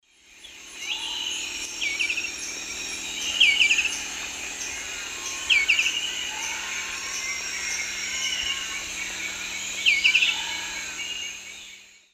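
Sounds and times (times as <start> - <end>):
Zimmerius gracilipes dawn song in the Eastern Lowlands of South America: 0.1 - 12.1.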